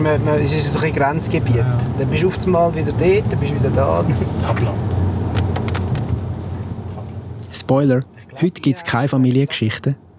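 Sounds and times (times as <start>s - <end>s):
speech: 0.0s - 5.1s, 7.6s - 10.0s
car in motion engine and tyre road noise heard from inside the cabin: 0.0s - 10.1s
faint clicks and rattles: 5.3s - 7.1s.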